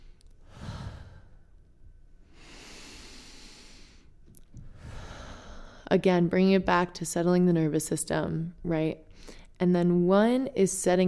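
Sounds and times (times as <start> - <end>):
long deep breaths drawn in and out slowly: 0.0 - 5.9
speech: 5.9 - 11.0.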